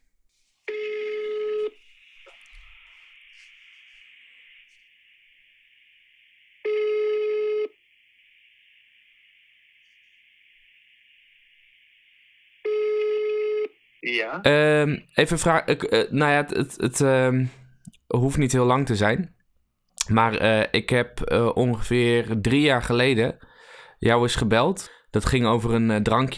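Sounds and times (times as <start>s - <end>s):
telephone ringback tones on an outgoing call: 0.7s - 1.8s, 6.6s - 7.8s, 12.7s - 13.7s
faint steady high whine on the telephone line: 0.7s - 15.0s
speech: 14.0s - 19.4s, 20.0s - 26.3s.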